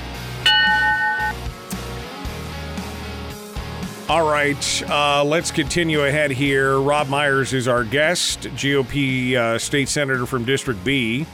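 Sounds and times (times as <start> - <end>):
bright bell strike: 0.5 - 1.4
speech: 4.1 - 11.3.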